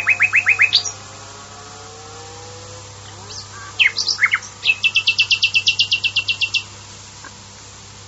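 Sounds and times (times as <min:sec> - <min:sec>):
Common nightingale singing a brisk phrase: 0:00.0 - 0:01.3, 0:02.4 - 0:07.4.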